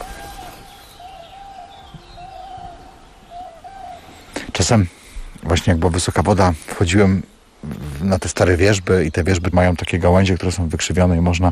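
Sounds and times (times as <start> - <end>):
cranes calling over flooded wetland meadows: 0.0 - 5.2
soft hiss: 0.0 - 11.5
speech: 4.6 - 11.5.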